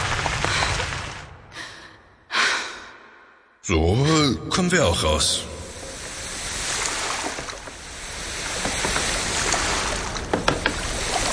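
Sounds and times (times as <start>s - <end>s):
sharp splashes or knocks: 0.0s - 1.4s, 6.5s - 11.3s
water washing around a moving boat: 0.0s - 1.8s, 5.3s - 11.3s
speech: 3.7s - 5.5s.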